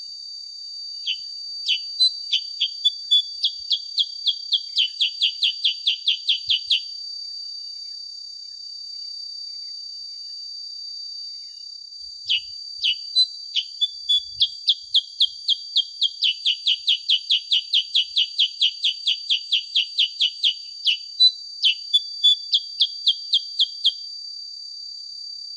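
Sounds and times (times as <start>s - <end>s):
sooty-headed bulbul song of sharp downslurred chirps: 1.0s - 6.9s, 12.3s - 24.0s.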